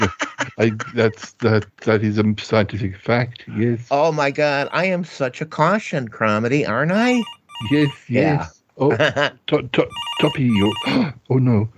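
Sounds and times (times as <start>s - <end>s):
speech: 0.6s - 11.7s
telephone ringing in short electronic bursts: 7.0s - 8.2s, 9.9s - 11.0s.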